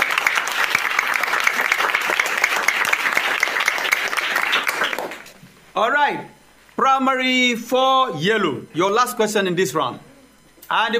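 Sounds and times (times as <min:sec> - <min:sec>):
steady applause from an audience: 0:00.0 - 0:05.4
speech: 0:05.8 - 0:10.1, 0:10.7 - 0:10.9.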